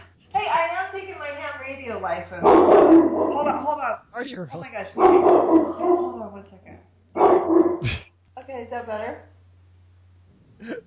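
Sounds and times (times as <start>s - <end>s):
speech: 1.8s - 9.4s, 10.6s - 10.8s
dog barking and baying: 2.4s - 3.6s, 5.0s - 6.3s, 7.2s - 7.9s.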